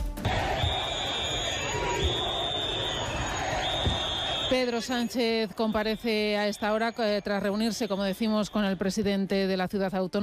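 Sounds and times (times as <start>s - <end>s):
large crowd of residents shouting and booing at a prime minister: 0.2s - 7.4s
shrill whistles: 0.3s - 9.0s
speech: 4.5s - 10.2s.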